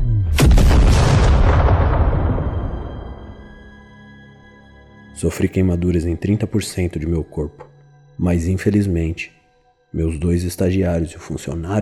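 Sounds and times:
single loud explosion: 0.3 - 3.6
brief low rumble: 0.4 - 3.8
speech: 5.2 - 11.8.

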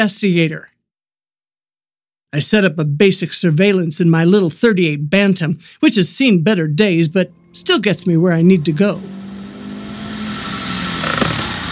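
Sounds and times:
speech: 0.0 - 0.7, 2.3 - 9.3
voice imitating a car engine running and stopping: 6.8 - 9.5.

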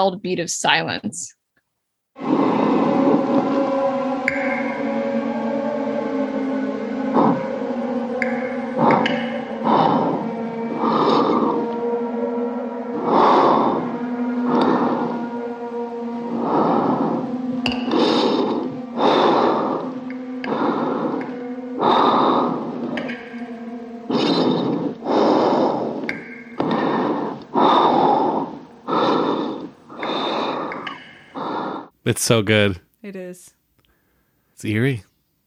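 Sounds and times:
speech: 0.0 - 1.4, 32.1 - 33.6, 34.6 - 35.1
heavy rasping breaths with snorting and gasping: 2.2 - 32.0, 33.8 - 34.6.

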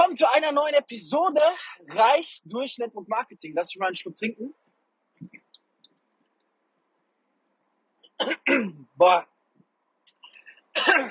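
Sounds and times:
speech: 0.2 - 4.6, 8.2 - 9.3, 10.8 - 11.0
person coughing: 8.1 - 8.8, 10.8 - 11.0.

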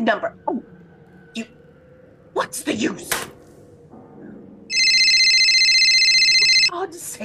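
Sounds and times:
speech: 0.0 - 0.7, 1.4 - 1.6, 2.4 - 3.3, 6.7 - 7.2
telephone bell ringing: 4.7 - 6.7.

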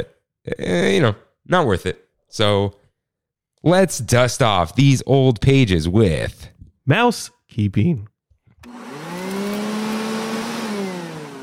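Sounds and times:
speech: 0.0 - 2.8, 3.6 - 8.8
vacuum cleaner whirring: 8.6 - 11.4.

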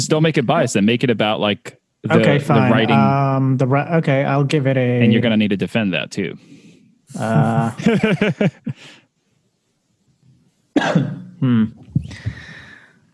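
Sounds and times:
speech: 0.0 - 9.0, 10.8 - 12.5
laughter: 7.2 - 8.8
person coughing harsh throaty coughs: 10.8 - 11.7.

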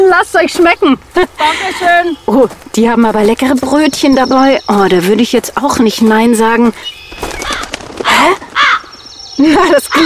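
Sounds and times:
outdoor noise: 0.0 - 10.0
speech: 0.1 - 7.5, 8.2 - 8.4, 9.4 - 10.0
crow cawing: 6.8 - 9.1.

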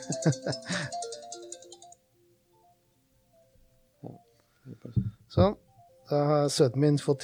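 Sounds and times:
speech: 0.0 - 1.0, 5.4 - 7.2
mobile phone ringtone with a bright electronic melody: 0.0 - 2.0.

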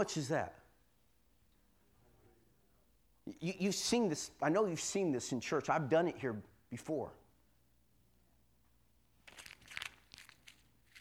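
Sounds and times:
speech: 0.0 - 0.6, 3.3 - 7.2
100 dollar paper bill being crumpled: 9.2 - 11.0.

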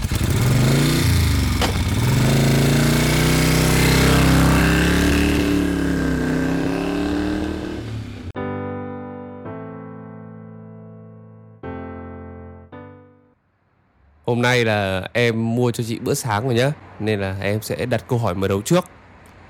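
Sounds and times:
motorbike engine starting and revving in Hanoi Vietnam: 0.0 - 8.4
speech: 14.3 - 19.0.

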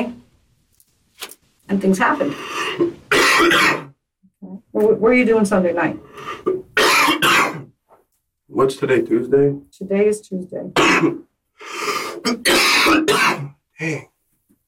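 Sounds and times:
speech: 1.7 - 3.9, 4.5 - 6.6, 8.5 - 14.1
man coughing hard in a fit: 3.1 - 3.9, 6.8 - 7.7, 10.8 - 11.2, 12.2 - 14.1.

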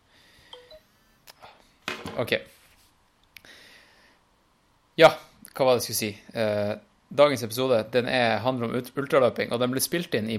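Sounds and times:
phone text message notification beeps: 0.6 - 0.8
speech: 2.2 - 2.6, 5.0 - 10.3.

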